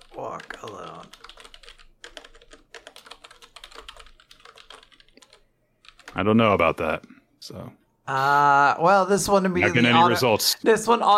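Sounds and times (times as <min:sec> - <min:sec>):
quiet rapid typing on a computer keyboard: 0:00.0 - 0:06.2
speech: 0:00.2 - 0:01.3, 0:06.2 - 0:11.1.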